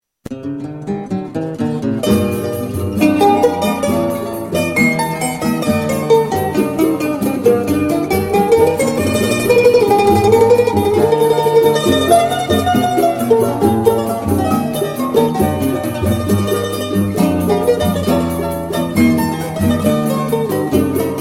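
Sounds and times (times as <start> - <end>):
mandolin: 0.3 - 21.1.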